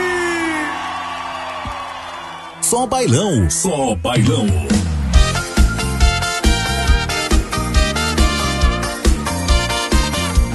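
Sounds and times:
whoops from a crowd: 0.0 - 2.6
crowd shouting and cheering at a live music performance: 0.0 - 10.5
speech: 2.7 - 4.9.

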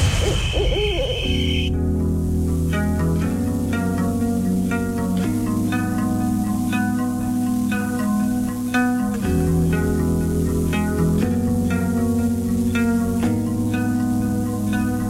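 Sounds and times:
owl hooting: 0.0 - 1.7
instrumental music: 0.2 - 15.0.

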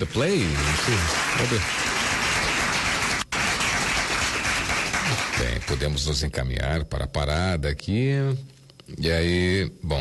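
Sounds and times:
speech: 0.0 - 1.8, 5.4 - 9.9
crowd applauding: 0.0 - 6.0.

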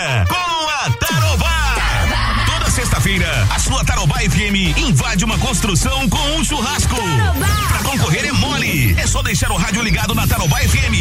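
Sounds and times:
speech: 0.0 - 0.4, 3.1 - 10.9
construction crew of men shouting together: 1.6 - 3.6.

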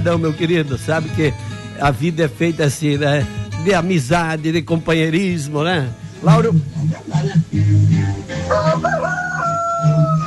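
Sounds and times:
speech: 0.0 - 9.3
rooster crowing: 8.4 - 10.2.

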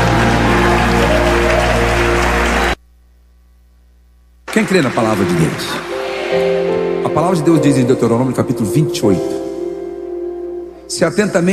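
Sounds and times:
audience applauding: 0.0 - 2.8, 4.5 - 7.6
speech: 4.6 - 9.5, 10.9 - 11.5.

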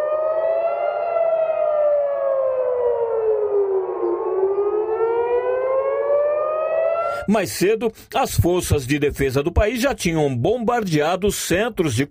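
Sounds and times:
civil defense air raid warning siren wailing in Jerusalem: 0.0 - 7.3
speech: 7.3 - 12.0.

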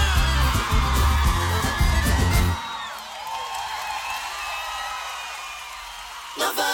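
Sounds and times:
large crowd of women screaming and cheering: 0.0 - 6.6.

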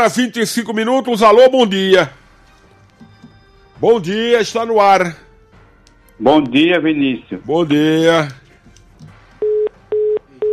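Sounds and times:
speech: 0.0 - 2.2, 3.8 - 5.2, 6.2 - 8.4
busy tone beeps after a phone call drops: 9.4 - 10.5.

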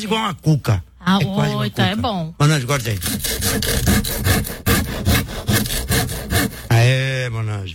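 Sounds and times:
speech: 0.0 - 5.2, 6.9 - 7.7
knife sawing through a large hard cuca bread: 2.7 - 6.9.

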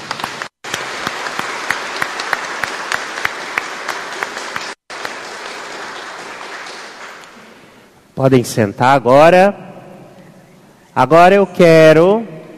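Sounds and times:
audience applauding: 0.0 - 7.7
speech: 8.2 - 9.6, 11.0 - 12.3.

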